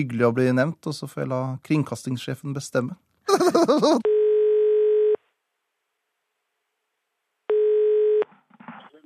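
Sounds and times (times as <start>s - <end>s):
speech: 0.0s - 4.2s
laughter: 3.3s - 4.0s
telephone ringback tone on an outgoing call: 4.0s - 5.2s, 7.5s - 8.2s.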